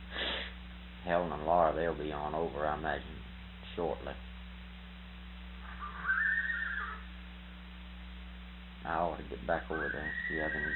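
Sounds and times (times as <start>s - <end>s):
steady low hum: 0.0s - 10.7s
speech: 1.0s - 4.3s, 8.8s - 10.7s
fresh spirited horse whinnying: 5.6s - 7.1s, 9.7s - 10.7s.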